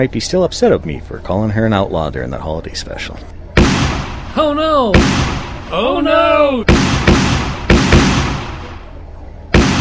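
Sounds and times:
speech: 0.0 - 3.4, 4.4 - 6.9
gunshot sound effect: 3.6 - 5.7, 6.7 - 8.9, 9.5 - 9.7.

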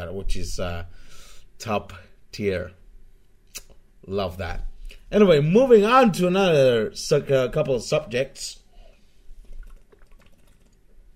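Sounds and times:
speech: 0.0 - 2.8, 4.0 - 8.6
person sipping water with soft slurping: 8.8 - 11.1.

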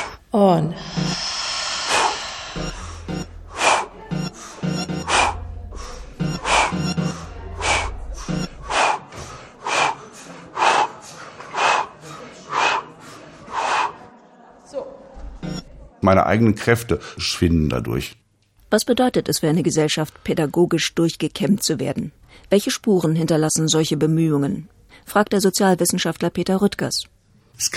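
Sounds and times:
group breathing in and out deeply: 0.0 - 14.2
speech: 0.3 - 1.2, 16.1 - 27.7
low rumble: 0.8 - 8.6.

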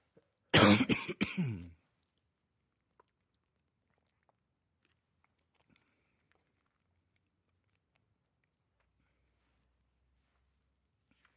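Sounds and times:
man coughing: 0.5 - 1.8
man clearing throat: 0.6 - 1.8.

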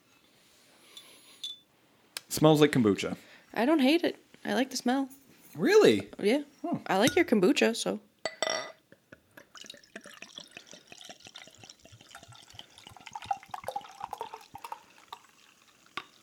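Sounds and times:
speech: 2.4 - 8.1
beer glugging and splashing as poured into two glasses: 9.4 - 16.2.

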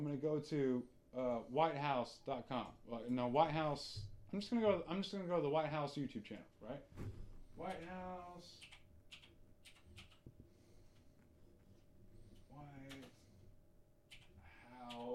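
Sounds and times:
speech: 0.0 - 8.8
steady hum: 0.1 - 15.1
typing on a computer keyboard with two fingers: 7.7 - 10.3, 12.7 - 13.2, 14.1 - 15.1.

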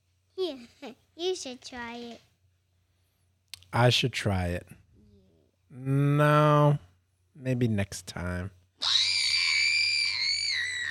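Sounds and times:
speech: 0.4 - 2.3, 3.7 - 4.8, 5.7 - 6.8, 7.4 - 9.2
child screaming into microphone: 8.8 - 10.8.

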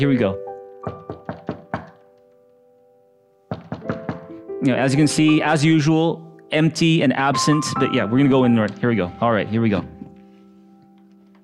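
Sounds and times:
speech: 0.0 - 1.1, 4.6 - 10.0
firm knocks against a door: 0.9 - 2.0, 3.5 - 4.4.

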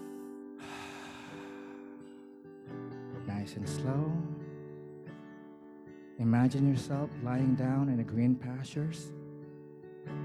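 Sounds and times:
slow breathy exhale with a soft ha during a guided breathing exercise: 0.0 - 2.5
speech: 3.4 - 4.4, 6.2 - 9.2.

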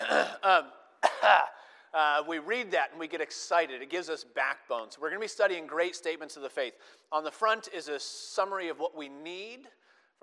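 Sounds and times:
person clearing throat: 0.0 - 1.6
speech: 2.3 - 10.2.

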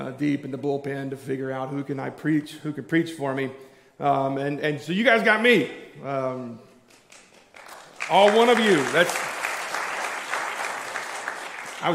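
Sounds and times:
speech: 0.0 - 6.7, 8.1 - 9.3
audience applause: 6.9 - 11.9.

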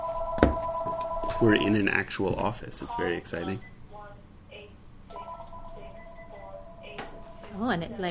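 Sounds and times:
office telephone ringing with an electronic warble: 0.0 - 1.8, 5.1 - 7.8
steady low hum: 0.0 - 8.1
speech: 1.4 - 3.7, 7.6 - 8.1.

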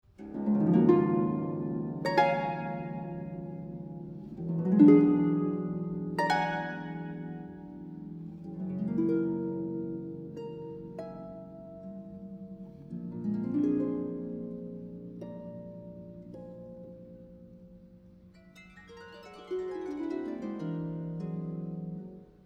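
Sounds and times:
solo harp playing: 0.1 - 22.4.

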